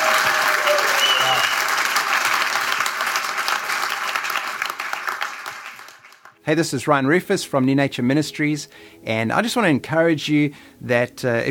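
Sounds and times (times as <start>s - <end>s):
church congregation voices cheering: 0.0s - 2.1s
church congregation clapping at a worship service: 0.0s - 6.4s
speech: 6.5s - 11.5s.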